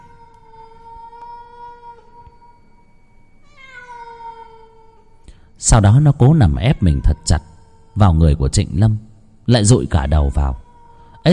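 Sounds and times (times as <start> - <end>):
black cat wailing mournfully: 0.0 - 2.4, 3.4 - 5.2, 6.0 - 8.8, 9.8 - 11.3
soft hiss: 0.0 - 11.3
speech: 5.6 - 10.6.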